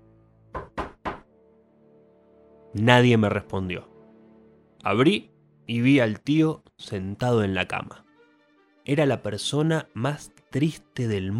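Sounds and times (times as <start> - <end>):
firm knocking on a door: 0.5 - 1.3
speech: 2.7 - 3.9, 4.8 - 8.0, 8.8 - 11.3.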